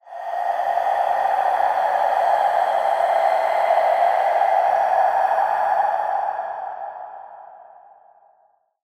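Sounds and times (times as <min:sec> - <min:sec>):
ambient skull breath: 0:00.0 - 0:08.7.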